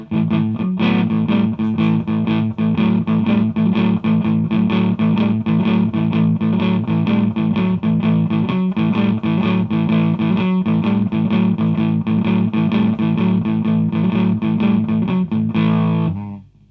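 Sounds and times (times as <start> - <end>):
guitar riff through a twin reverb amplifier: 0.0 - 16.6.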